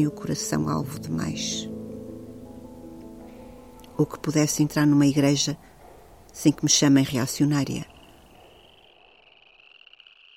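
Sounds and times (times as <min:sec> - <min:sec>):
speech: 0:00.0 - 0:01.7, 0:04.0 - 0:05.7, 0:06.3 - 0:07.9
frog croaking: 0:03.8 - 0:10.3.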